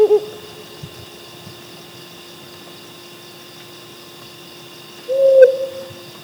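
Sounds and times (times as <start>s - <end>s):
Mottled wood owl Strix ocellata grisescens hooting: 0.0s - 0.7s, 5.1s - 6.1s
electrical hum and hiss: 0.0s - 6.2s.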